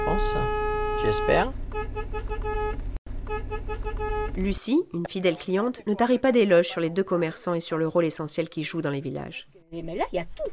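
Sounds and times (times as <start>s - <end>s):
travelling shop van horn honking in a village: 0.0s - 4.6s
speech: 0.2s - 1.6s, 4.4s - 10.5s.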